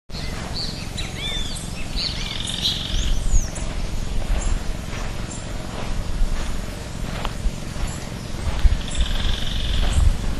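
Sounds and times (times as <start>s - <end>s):
Certhiaxis cinnamomeus calling in Itaparica: 0.1s - 10.2s.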